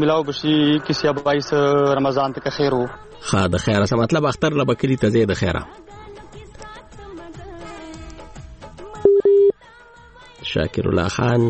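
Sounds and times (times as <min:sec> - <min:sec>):
speech: 0:00.0 - 0:06.0, 0:10.5 - 0:11.4
phone line tone beeps after a dropped call: 0:09.1 - 0:09.5.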